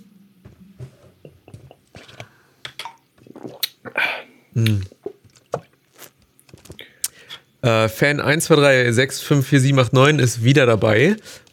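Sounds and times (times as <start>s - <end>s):
person sipping a refreshing drink: 1.9s - 7.4s
loud slurping gulp: 2.0s - 7.2s
wet mouth clicks: 2.6s - 4.0s, 4.6s - 6.2s
speech: 4.6s - 4.9s, 7.7s - 11.4s.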